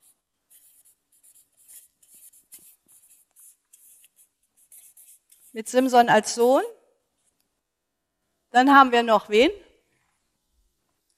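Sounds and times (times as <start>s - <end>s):
pen scratching while writing a name: 0.0s - 6.5s
speech: 5.6s - 6.8s, 8.6s - 9.6s.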